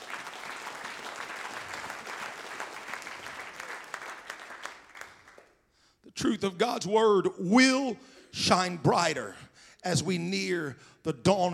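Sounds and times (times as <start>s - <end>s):
congregation clapping hands in applause: 0.0s - 5.6s
speech: 6.2s - 11.5s.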